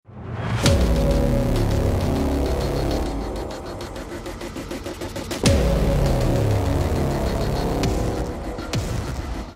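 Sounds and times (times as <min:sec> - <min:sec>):
suspense intro music: 0:00.1 - 0:09.5.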